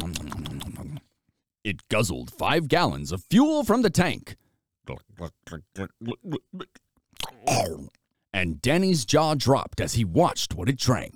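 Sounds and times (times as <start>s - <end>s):
voice imitating crunching and chewing: 0.0s - 1.2s, 4.8s - 8.1s
speech: 1.7s - 6.8s, 7.4s - 11.1s.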